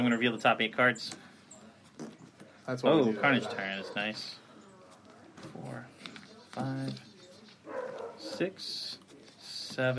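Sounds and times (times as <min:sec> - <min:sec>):
speech: 0:00.0 - 0:01.3, 0:02.7 - 0:04.4, 0:06.6 - 0:07.1, 0:08.2 - 0:09.0, 0:09.8 - 0:09.9
dog barking in the room: 0:03.0 - 0:04.2, 0:07.6 - 0:08.4.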